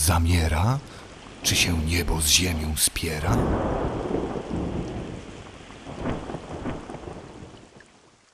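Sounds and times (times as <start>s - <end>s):
speech: 0.0s - 4.6s
steady rain: 0.0s - 8.3s
deep rolling thunder: 3.3s - 7.8s.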